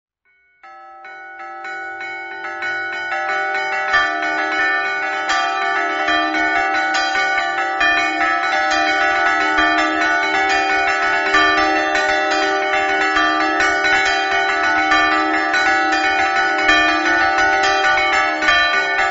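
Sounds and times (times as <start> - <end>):
bells ringing: 0.6 - 19.0.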